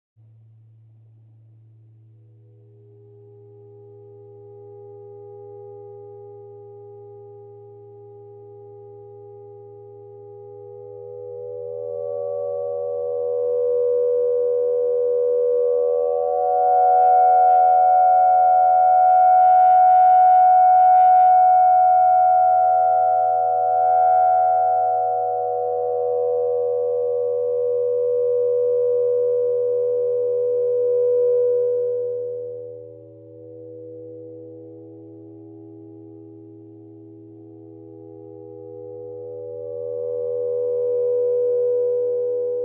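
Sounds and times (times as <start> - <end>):
high aeolian tone: 10.6 - 42.6.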